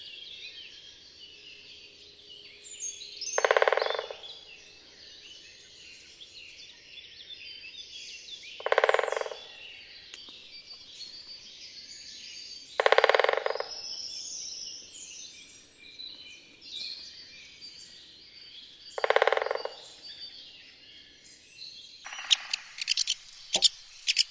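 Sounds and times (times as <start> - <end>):
other birds singing high songs: 0.0 - 24.2
great spotted woodpecker Dendrocopos major sharp calls: 3.3 - 4.5, 8.6 - 10.3, 12.8 - 14.3, 18.9 - 20.2, 22.0 - 24.2
great spotted woodpecker Dendrocopos major drumming: 3.4 - 4.3, 8.6 - 9.5, 12.8 - 13.8, 18.9 - 20.0, 22.1 - 24.2.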